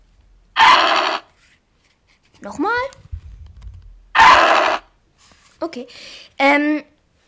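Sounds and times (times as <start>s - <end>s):
video game creature's cry: 0.6s - 1.3s, 4.2s - 4.9s
speech: 2.4s - 3.0s, 5.7s - 6.9s
faint low rumbling: 2.9s - 4.2s.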